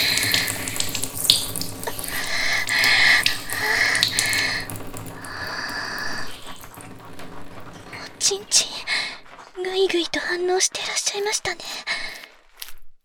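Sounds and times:
stream of urine from a person splashing into water: 0.0 - 9.6
speech: 10.2 - 11.8.

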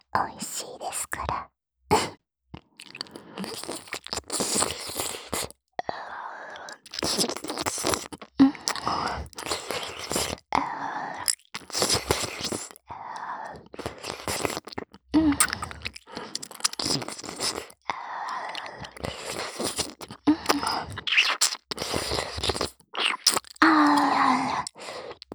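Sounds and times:
faint whispering: 0.0 - 1.5
speech: 0.2 - 1.5
wet ear-eating ASMR mouth sounds with kisses, licks and smacks: 1.9 - 5.6, 6.5 - 10.5, 11.1 - 25.3.

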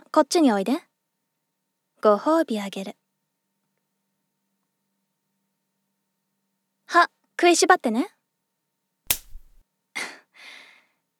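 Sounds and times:
speech: 0.2 - 0.9, 2.0 - 3.0, 6.9 - 8.2
slap across the face: 9.1 - 9.6.

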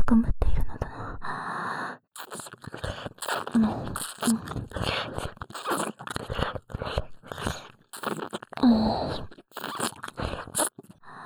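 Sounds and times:
speech: 0.1 - 0.4, 3.6 - 5.3
breathy voiced murmurs: 2.2 - 11.0
wet licking and slurping of an ear: 2.2 - 11.1.

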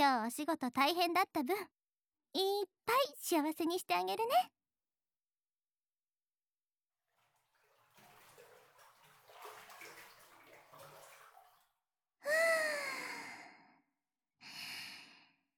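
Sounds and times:
speech: 0.0 - 4.6
water sloshing and lapping as someone settles into a hot bath: 7.1 - 11.8.

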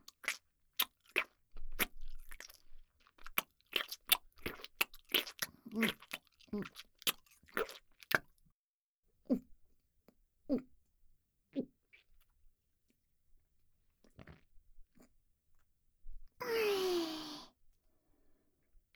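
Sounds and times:
crunchy chewing of food: 0.1 - 8.3
breathy burst: 16.4 - 17.5.

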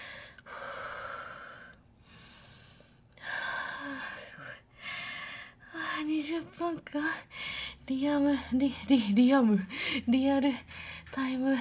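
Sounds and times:
speech: 6.2 - 11.5
heavy panting after exertion: 7.2 - 11.5.

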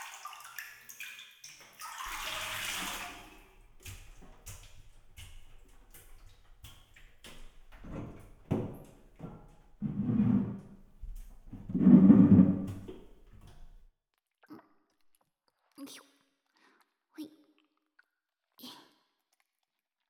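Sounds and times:
bath water sloshing and splashing as someone rises out of a bath: 0.0 - 13.9
light knocks and clatters: 3.6 - 13.9.

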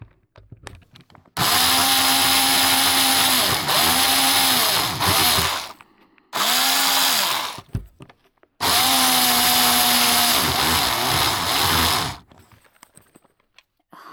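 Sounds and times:
power drill whirring as it bites into material: 1.4 - 5.8, 6.4 - 7.8, 8.6 - 12.2.

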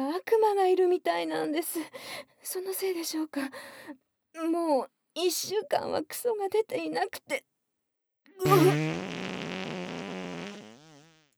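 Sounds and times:
speech: 0.2 - 7.5, 8.4 - 9.3
fart: 8.4 - 11.3.

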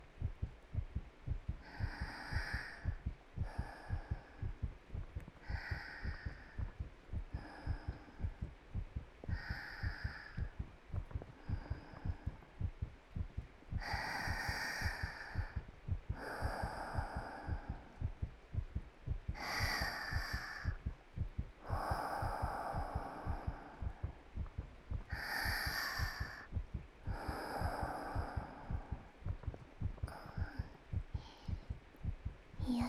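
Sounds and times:
heartbeat heard with ear pressed to a person's chest: 0.0 - 32.8
slow soft breaths of a person: 0.0 - 32.8.

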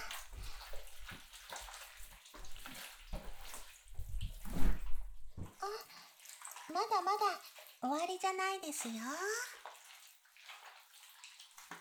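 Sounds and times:
water running and splashing as something is rinsed away: 0.0 - 11.7
speech: 6.8 - 9.5.

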